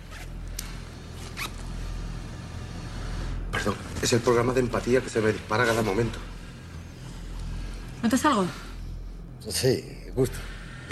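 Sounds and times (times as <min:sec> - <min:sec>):
steady low hum: 0:00.0 - 0:10.9
zipper being pulled down: 0:00.1 - 0:00.3
speech: 0:03.6 - 0:06.3, 0:08.0 - 0:08.6, 0:09.4 - 0:10.9.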